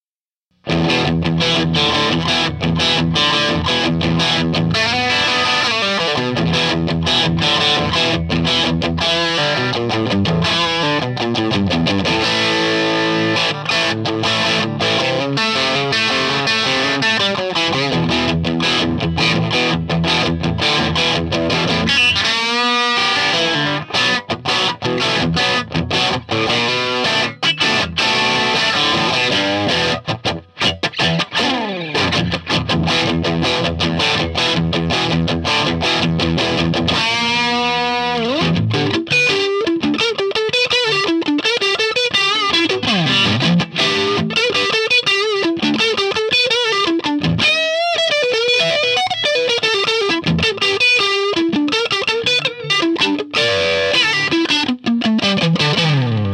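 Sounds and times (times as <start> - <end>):
dirty Stratocaster electric guitar through a Triwatt amp: 0.5 - 56.3.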